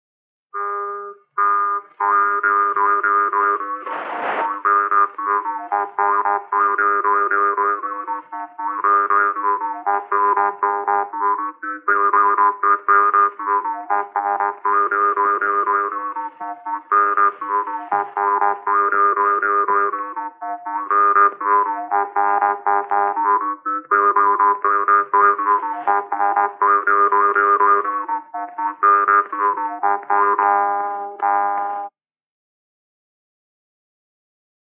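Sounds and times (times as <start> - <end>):
jaw harp playing a folk polka: 0.6 - 31.9.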